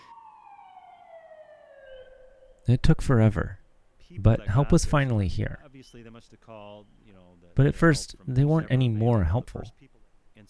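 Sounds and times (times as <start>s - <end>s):
emergency vehicle siren wailing: 0.0s - 2.7s
speech: 2.7s - 10.4s.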